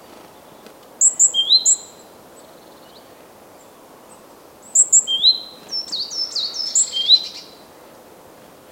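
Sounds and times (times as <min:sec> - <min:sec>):
soft hiss: 0:00.0 - 0:08.7
great tit calling: 0:01.0 - 0:02.0, 0:04.6 - 0:07.6.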